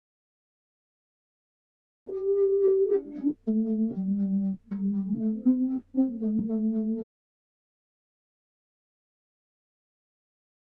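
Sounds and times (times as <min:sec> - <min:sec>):
low vocal melody loop in E minor: 0:02.1 - 0:07.1.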